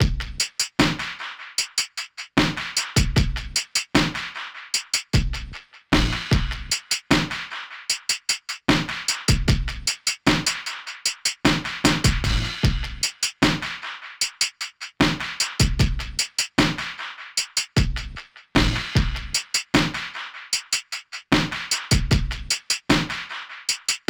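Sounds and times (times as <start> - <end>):
silky 70s soul drum beat: 0.0 - 1.3, 2.4 - 4.3, 5.0 - 7.5, 8.6 - 10.7, 11.4 - 13.8, 14.4 - 17.0, 17.6 - 24.0.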